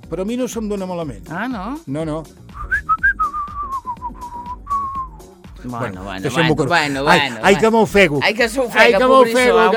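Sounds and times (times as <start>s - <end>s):
speech: 0.1s - 2.6s, 5.6s - 9.7s
person whistling a short melodic tune: 2.5s - 5.3s.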